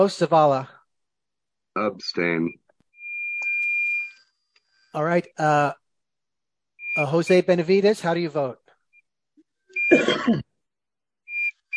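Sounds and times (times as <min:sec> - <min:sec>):
speech: 0:00.0 - 0:00.8, 0:01.8 - 0:02.6, 0:05.0 - 0:05.8, 0:07.0 - 0:08.6, 0:09.9 - 0:10.5
short high-pitched electronic beeps on a phone line: 0:03.0 - 0:04.2.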